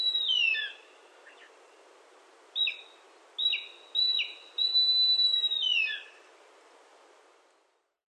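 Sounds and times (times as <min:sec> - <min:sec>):
mountain hawk-eagle high thin whistled calls: 0:00.0 - 0:01.5, 0:02.6 - 0:06.2.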